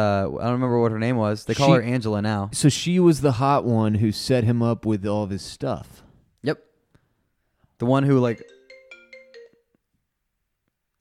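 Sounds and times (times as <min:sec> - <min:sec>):
speech: 0:00.0 - 0:06.7, 0:07.8 - 0:08.6
computer softphone ringing for an incoming call: 0:08.2 - 0:09.8.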